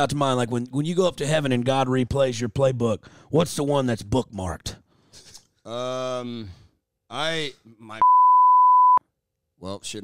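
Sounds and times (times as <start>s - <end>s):
speech: 0.0s - 4.8s, 5.6s - 8.1s, 9.6s - 10.0s
censor beep over speech: 8.0s - 9.0s.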